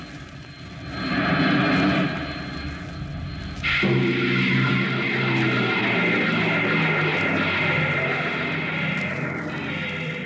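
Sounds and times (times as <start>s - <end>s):
spaceship bow jets roaring during landing: 0.8s - 10.2s.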